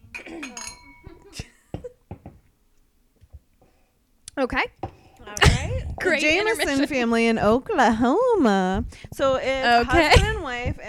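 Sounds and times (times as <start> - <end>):
glasses clinking in a toast: 0.0 - 1.8
speech: 4.4 - 4.8, 6.0 - 10.8.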